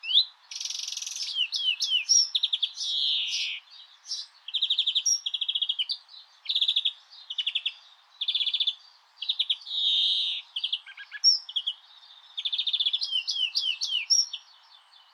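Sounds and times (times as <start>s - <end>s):
greenfinch singing: 0.0s - 15.1s.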